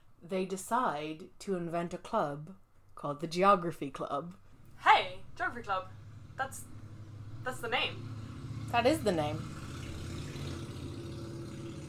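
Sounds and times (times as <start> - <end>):
speech: 0.3 - 6.8, 7.4 - 9.6
motorcycle engine revving outside a house: 5.2 - 11.8.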